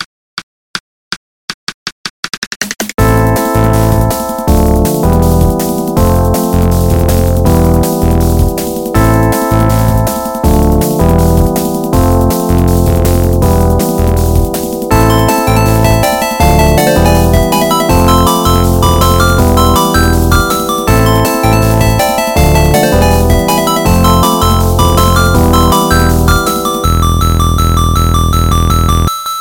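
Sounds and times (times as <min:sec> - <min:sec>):
8-bit electronic sound: 0:03.0 - 0:29.1.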